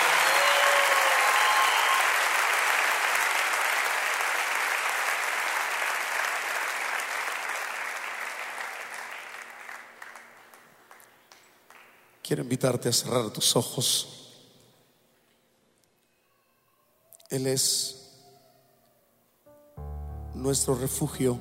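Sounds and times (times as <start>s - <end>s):
crowd applauding steadily: 0.0s - 12.0s
speech: 12.3s - 14.2s, 17.3s - 18.0s, 20.4s - 21.4s.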